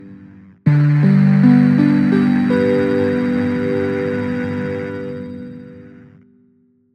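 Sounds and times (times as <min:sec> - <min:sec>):
trashcan bell synthesizer tone: 0:00.7 - 0:06.0.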